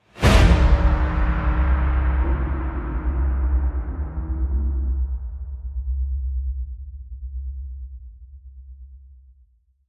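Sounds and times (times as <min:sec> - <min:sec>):
whoosh: 0:00.0 - 0:05.6.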